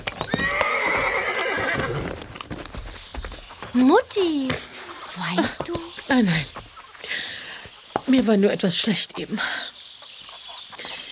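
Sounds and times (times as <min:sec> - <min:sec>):
horse hooves clip-clopping: 0:00.0 - 0:08.5
horse whinnying: 0:00.1 - 0:02.2
speech: 0:03.8 - 0:06.6, 0:08.1 - 0:09.7.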